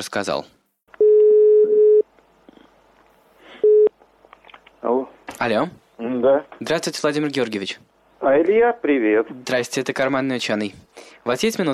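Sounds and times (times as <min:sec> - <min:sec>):
speech: 0:00.0 - 0:00.6, 0:04.8 - 0:11.7
telephone ringback tone while a call is being placed: 0:01.0 - 0:02.0, 0:03.6 - 0:03.9.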